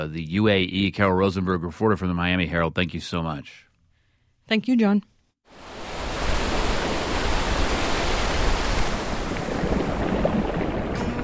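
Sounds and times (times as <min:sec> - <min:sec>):
speech: 0:00.0 - 0:03.7, 0:04.5 - 0:05.7
ocean waves breaking: 0:05.5 - 0:11.2.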